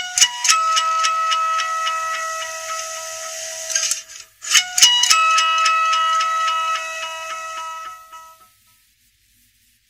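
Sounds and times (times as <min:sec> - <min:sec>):
Nokia mobile phone ringtone: 0:00.0 - 0:03.9, 0:04.5 - 0:08.5.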